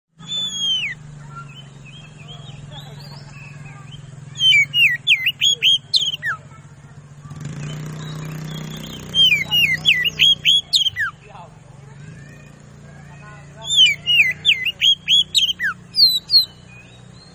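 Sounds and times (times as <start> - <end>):
Oriental magpie-robin lure song: 0.1 - 17.3.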